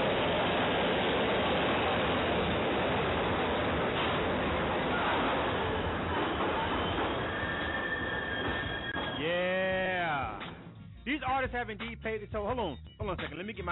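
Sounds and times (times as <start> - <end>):
subway train roaring on the tracks: 0.0 - 9.8
subway train wheels squealing on rails: 0.0 - 9.8
speech: 11.3 - 13.6.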